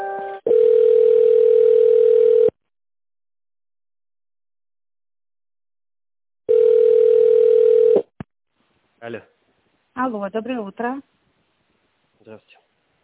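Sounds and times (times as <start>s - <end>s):
telephone line tone while a call is being transferred: 0.5s - 2.6s, 6.5s - 8.1s
speech: 10.2s - 11.2s, 12.3s - 12.6s.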